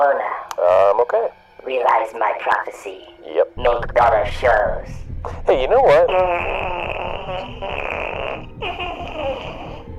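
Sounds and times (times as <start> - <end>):
speech: 0.0 - 9.4
mouth-made fart noise over a phone call: 6.0 - 9.9.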